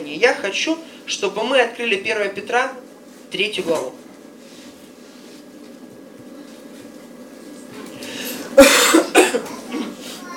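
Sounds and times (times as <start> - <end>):
speech: 0.1 - 4.0
person coughing: 8.5 - 10.0.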